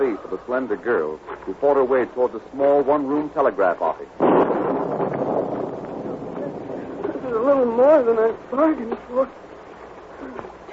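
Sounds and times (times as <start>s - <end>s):
speech: 0.0s - 5.2s, 7.4s - 9.5s
gusting wind in a rain storm: 4.2s - 10.7s
wind-driven lashing rain: 4.2s - 10.7s.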